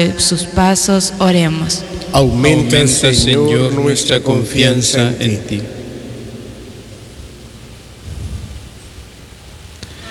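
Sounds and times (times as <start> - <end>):
speech: 0.0 - 5.8
low distant thunder rumbling: 1.2 - 9.7
steady rain: 2.0 - 10.0.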